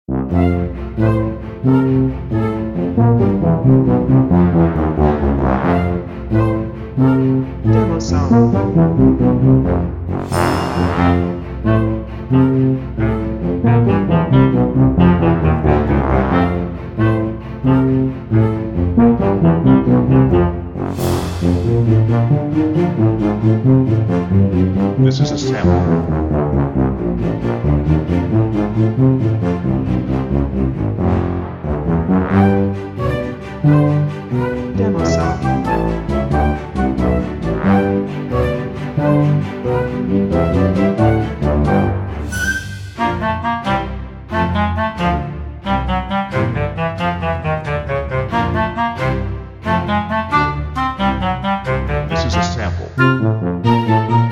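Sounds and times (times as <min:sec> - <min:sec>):
funny tuba: 0:00.1 - 0:54.2
bouncy flute: 0:33.2 - 0:54.2.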